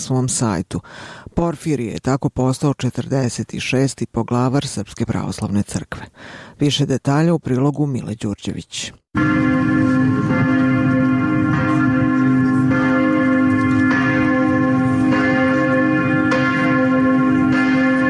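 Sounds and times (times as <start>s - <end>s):
speech: 0.0s - 10.0s
church bells pealing: 9.2s - 18.0s.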